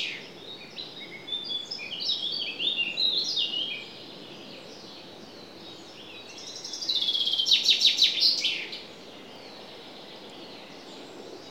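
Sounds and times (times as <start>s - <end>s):
common chaffinch song with rapid trill and flourish: 0.0s - 11.4s.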